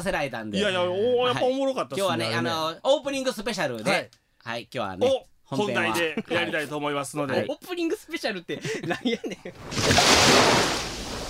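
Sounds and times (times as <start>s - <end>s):
speech: 0.0s - 10.7s
laughter: 5.8s - 6.7s, 8.5s - 9.6s
ocean surf crashing: 9.7s - 11.2s.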